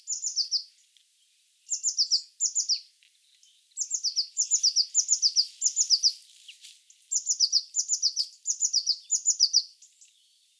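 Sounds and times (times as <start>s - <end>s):
blue tit singing: 0.0s - 0.7s, 1.7s - 6.2s, 7.1s - 10.3s.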